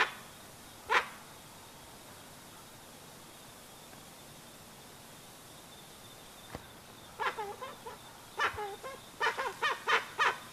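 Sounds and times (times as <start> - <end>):
faint steady high-pitched hum: 0.0 - 10.5
dusky-legged guan giving grouped nasal honks: 7.2 - 10.4.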